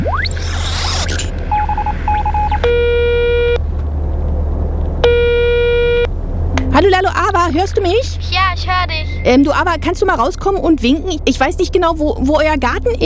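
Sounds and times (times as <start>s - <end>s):
rising sweep: 0.0s - 2.6s, 6.1s - 11.0s
steady low hum: 0.0s - 13.0s
telephone keypad beeps: 1.5s - 2.8s
speech: 7.5s - 13.0s.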